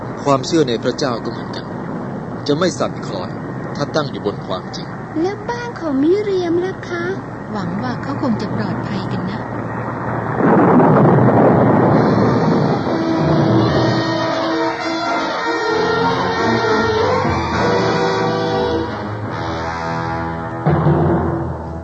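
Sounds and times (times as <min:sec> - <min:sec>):
storm wind blowing against a stone-founded house: 0:00.0 - 0:05.8, 0:07.2 - 0:15.4
speech: 0:00.2 - 0:01.6, 0:02.4 - 0:09.6
sustained tonal notes: 0:08.6 - 0:20.8.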